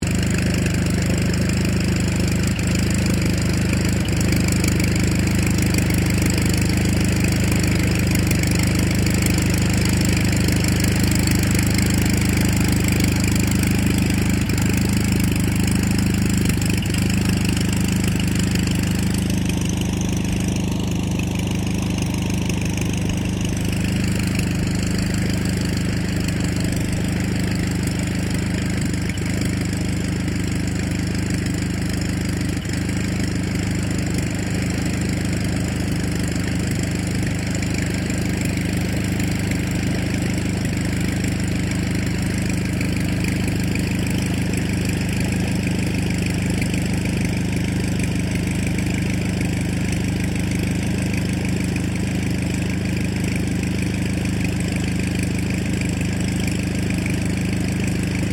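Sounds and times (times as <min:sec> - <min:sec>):
1939 Ryan STM-S2 airplane engine idling: 0:00.0 - 0:58.3.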